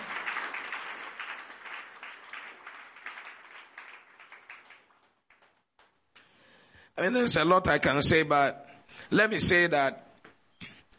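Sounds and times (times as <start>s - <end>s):
crowd clapping rhythmically: 0.0s - 6.4s
speech: 7.0s - 10.0s.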